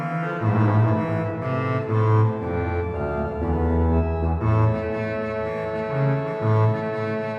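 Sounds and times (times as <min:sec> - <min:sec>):
organ playing on a Basse de Trompette stop: 0:00.2 - 0:07.3.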